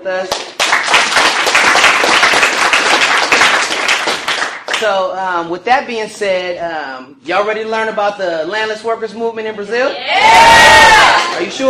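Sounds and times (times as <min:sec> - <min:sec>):
speech: 0:00.0 - 0:00.5, 0:04.8 - 0:11.6
crowd applauding: 0:00.3 - 0:04.8.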